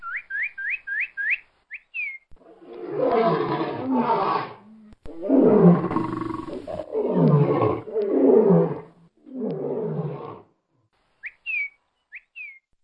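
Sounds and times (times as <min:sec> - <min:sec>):
lion roaring in deep rasping bursts: 0:02.4 - 0:10.5.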